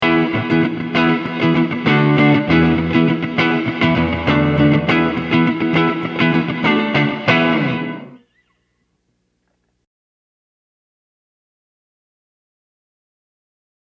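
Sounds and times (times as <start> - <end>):
guitar through gated RV-7 reverb: 0.0 - 8.6.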